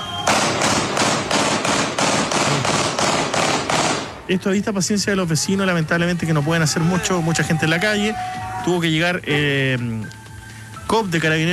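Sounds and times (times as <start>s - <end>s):
gunshots in the streets of Quilicura: 0.2s - 4.4s
fireworks in the streets of Quilicura: 0.2s - 4.7s
speech: 4.3s - 10.2s, 10.9s - 11.5s.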